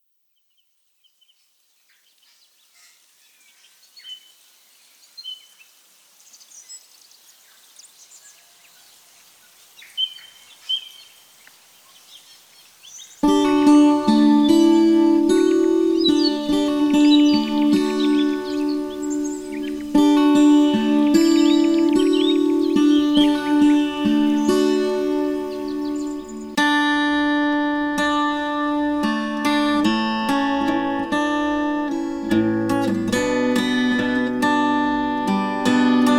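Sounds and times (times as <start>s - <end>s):
ambient bass guitar: 13.3s - 36.1s.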